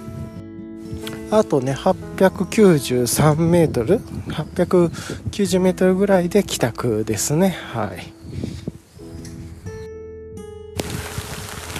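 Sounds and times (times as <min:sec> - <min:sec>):
speech: 0:01.3 - 0:08.5
sudden heavy rain falling: 0:10.8 - 0:11.7.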